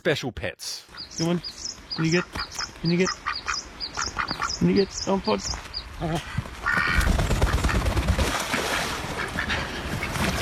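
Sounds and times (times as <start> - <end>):
speech: 0.0 - 3.3, 4.0 - 7.0
pair of pet ducks quacking: 1.0 - 5.4, 6.0 - 8.1, 8.8 - 10.4.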